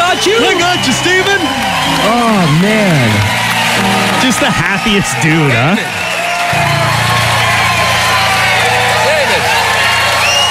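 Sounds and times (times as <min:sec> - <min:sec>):
clapping: 0:00.0 - 0:10.5
large crowd cheering and roaring: 0:00.0 - 0:10.5
whooping: 0:00.0 - 0:10.5
speech: 0:04.4 - 0:06.7.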